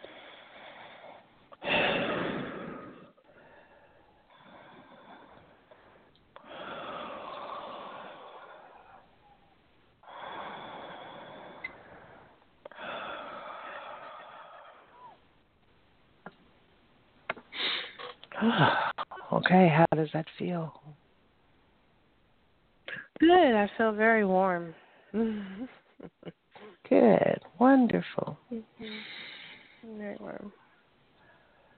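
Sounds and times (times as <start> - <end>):
slow deep breaths: 0.0 - 15.4, 24.7 - 26.8, 28.7 - 29.9, 30.6 - 31.7
speech: 18.4 - 18.8, 19.4 - 20.8, 23.2 - 25.8, 26.9 - 29.1.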